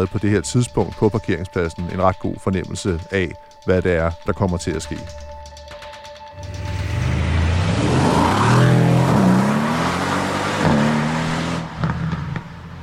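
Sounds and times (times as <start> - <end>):
speech: 0.0 - 5.4
several cars pulling away with engines revving: 6.4 - 12.8.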